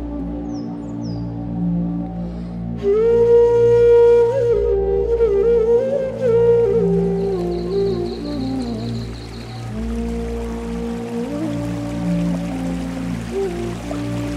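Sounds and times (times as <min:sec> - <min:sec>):
soft sustained musical tones: 0:00.0 - 0:14.3
small waterfall splashing: 0:06.2 - 0:14.3.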